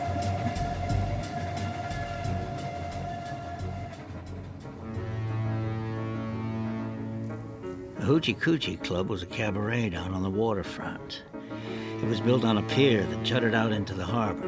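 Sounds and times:
train rumbling on rails: 0.0 - 5.4
droning hum: 0.0 - 7.6
speech: 8.0 - 14.4.

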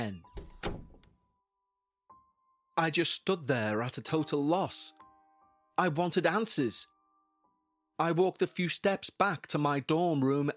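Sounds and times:
speech: 0.0 - 0.3, 2.8 - 5.0, 5.8 - 6.9, 8.0 - 10.5
heavy door closing with a solid low thunk: 0.3 - 1.1.

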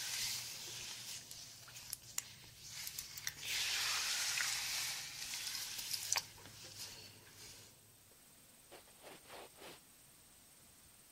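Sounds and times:
hissing water spray rinsing hair: 0.0 - 1.9, 2.7 - 6.4
quiet brushing: 0.0 - 3.4, 4.6 - 7.8, 8.7 - 9.9.

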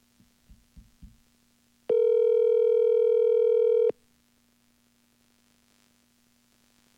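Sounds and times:
soft taps: 0.2 - 1.2
outgoing telephone call ringback tone: 1.9 - 3.9.

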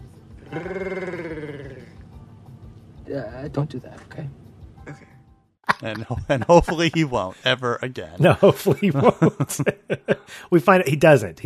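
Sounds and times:
gruff choppy vocal noises: 0.4 - 2.0
person imitating a lion's roar: 0.4 - 2.0
speech: 0.5 - 1.2, 3.1 - 5.1, 5.8 - 11.4
laughter: 5.7 - 10.4.

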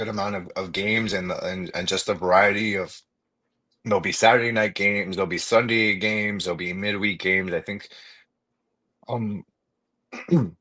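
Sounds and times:
speech: 0.0 - 3.1, 3.8 - 8.2, 9.1 - 9.5, 10.1 - 10.6
throaty coughs: 10.2 - 10.6.

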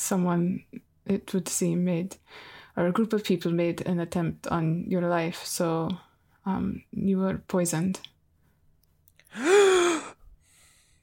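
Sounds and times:
speech: 0.1 - 8.1, 9.3 - 9.7
person gasping, acted: 9.3 - 11.0.

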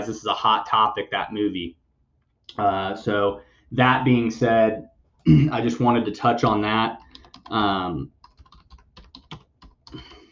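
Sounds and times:
speech: 0.0 - 1.8, 2.5 - 8.2
computer keyboard typing: 7.0 - 10.3.

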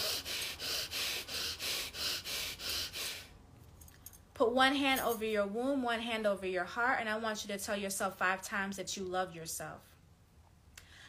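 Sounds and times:
fire breaths, rapid forceful rhythmic breathing: 0.0 - 3.4
speech: 4.4 - 9.9.

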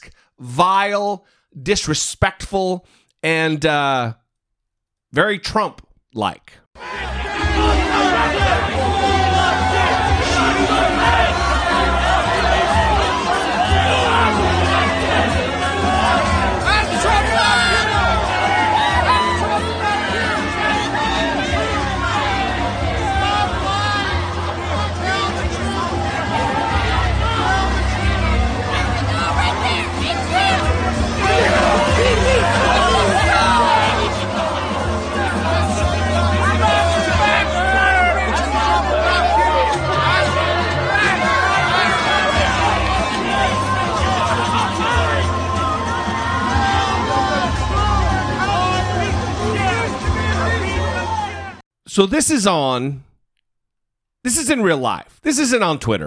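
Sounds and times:
speech: 0.4 - 4.2, 5.1 - 8.9, 52.0 - 53.1, 54.2 - 56.0
dense crowd of adults shouting, jeering and heckling: 6.8 - 51.6.

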